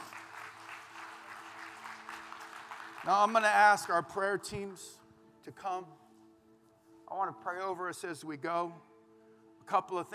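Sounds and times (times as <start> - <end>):
church congregation clapping during a service: 0.0 - 4.6
speech: 3.0 - 6.0, 7.1 - 8.9, 9.7 - 10.1.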